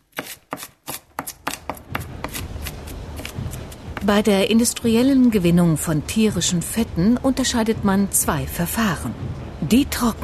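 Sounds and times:
shallots chopped finely: 0:00.0 - 0:04.1
speech: 0:04.0 - 0:10.2.

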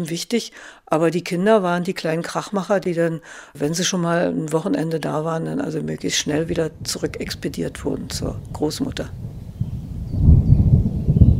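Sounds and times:
speech: 0:00.0 - 0:09.4
thunder from an approaching summer thunderstorm: 0:06.1 - 0:11.3.

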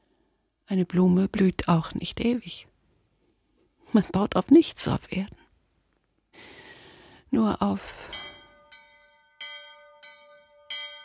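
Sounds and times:
speech: 0:00.7 - 0:02.7, 0:03.9 - 0:05.4, 0:07.3 - 0:08.3
village church bells ringing: 0:07.9 - 0:11.0.

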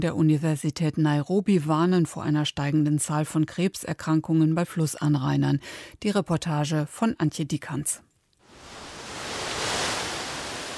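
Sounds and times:
speech: 0:00.0 - 0:08.1
waterfalls rushing down a gorge: 0:08.5 - 0:10.7.

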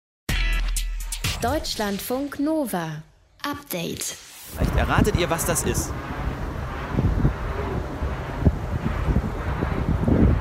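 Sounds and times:
speech: 0:01.4 - 0:06.2
wind turbine turning with deep whooshing rumble: 0:04.4 - 0:10.3.

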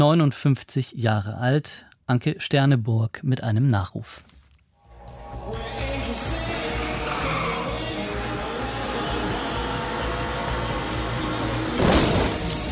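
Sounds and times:
speech: 0:00.0 - 0:04.4
car engine droning: 0:05.0 - 0:12.7
car crashing into a wall: 0:11.6 - 0:12.7
glass shattering in a car crash: 0:11.7 - 0:12.7.

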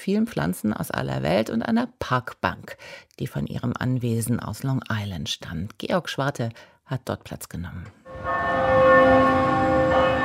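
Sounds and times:
speech: 0:00.0 - 0:09.5
church bells ringing for noon in Manhattan: 0:08.1 - 0:10.2.

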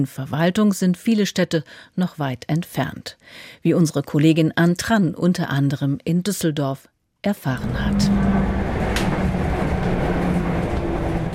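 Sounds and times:
speech: 0:00.0 - 0:08.8
tram rumbling at a city stop: 0:07.6 - 0:11.3.

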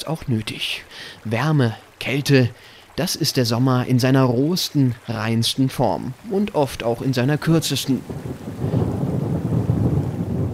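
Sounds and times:
speech: 0:00.0 - 0:08.8
rain-like hiss: 0:00.0 - 0:10.5
thunder rumbling in a summer thunderstorm in the mountains: 0:07.0 - 0:10.5.

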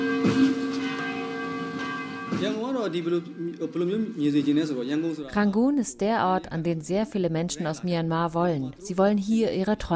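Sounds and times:
cathedral church bells ringing: 0:00.0 - 0:04.6
speech: 0:02.4 - 0:09.9.

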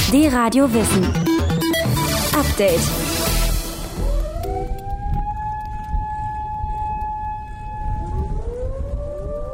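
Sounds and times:
speech: 0:00.1 - 0:01.3, 0:01.9 - 0:03.0
civil-defense siren wailing in Japan for tsunami victims: 0:03.8 - 0:09.5.

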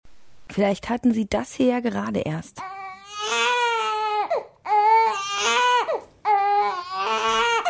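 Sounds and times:
speech: 0:00.6 - 0:02.7
baby wailing loudly: 0:02.6 - 0:07.6.

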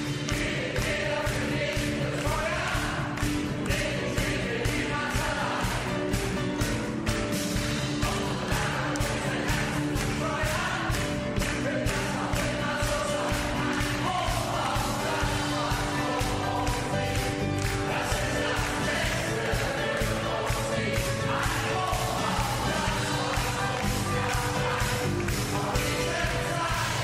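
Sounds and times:
crowd clapping rhythmically: 0:00.0 - 0:27.0
crowd singing old hits together at a sing-along event in Germany: 0:00.0 - 0:27.0.

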